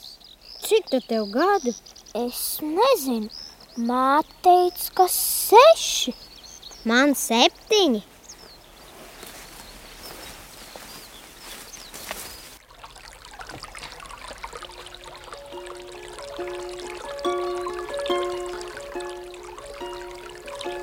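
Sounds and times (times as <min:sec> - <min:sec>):
spring water trickling and gurgling: 0:00.0 - 0:10.3, 0:12.6 - 0:20.8
speech: 0:00.7 - 0:08.1
soft melodic tune of repeated notes: 0:14.9 - 0:20.8.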